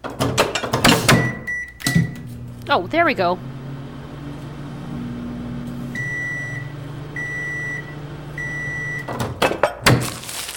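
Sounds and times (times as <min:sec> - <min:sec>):
microwave heating a bag of sweet popcorn humming: 0:00.8 - 0:10.2
high microwave beeps: 0:01.0 - 0:09.2
speech: 0:02.7 - 0:03.5.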